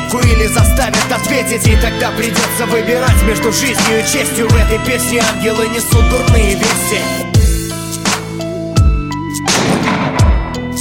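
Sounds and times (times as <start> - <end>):
musical backing with held tones: 0.0 - 10.7
speech: 0.1 - 7.3
heavy booming gunshots: 9.5 - 10.7.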